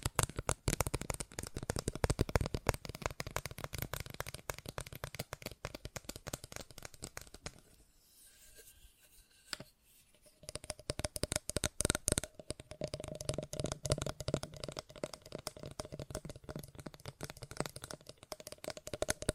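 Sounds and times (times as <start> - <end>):
fast tapping: 0.0 - 7.5, 10.5 - 19.3.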